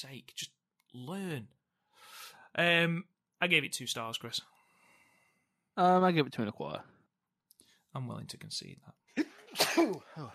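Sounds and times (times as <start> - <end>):
speech: 0.0 - 1.6, 2.6 - 4.6, 5.8 - 6.9, 7.9 - 10.3
forceful sneeze with a breathy hiss: 9.5 - 10.1.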